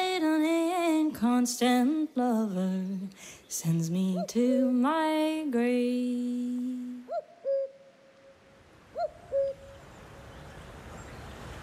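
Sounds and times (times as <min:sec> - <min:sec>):
low steady hiss: 0:00.0 - 0:11.6
speech: 0:01.2 - 0:07.3
cuckoo calling: 0:04.0 - 0:04.5, 0:07.0 - 0:10.6.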